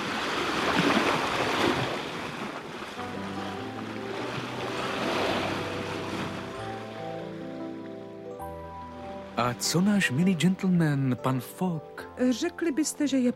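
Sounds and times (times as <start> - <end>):
steamship ploughing through rolling waves of the Red Sea: 0.0 - 8.2
wind: 0.0 - 11.2
speech: 9.4 - 13.3.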